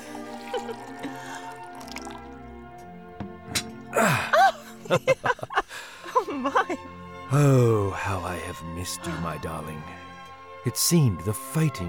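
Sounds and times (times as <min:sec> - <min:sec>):
quick liquid splashes: 0:00.0 - 0:02.8
wine glugging into a glass: 0:00.0 - 0:04.2
soft sustained musical backdrop: 0:00.0 - 0:11.8
laughter: 0:00.2 - 0:01.6, 0:04.0 - 0:06.8, 0:07.4 - 0:09.8
speech: 0:04.0 - 0:04.3, 0:04.9 - 0:05.5, 0:06.4 - 0:10.0, 0:10.6 - 0:11.8.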